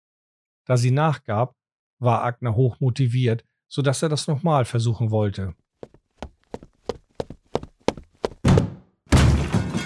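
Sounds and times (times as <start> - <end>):
speech: 0.7 - 6.0
heavy thuds: 5.8 - 8.7.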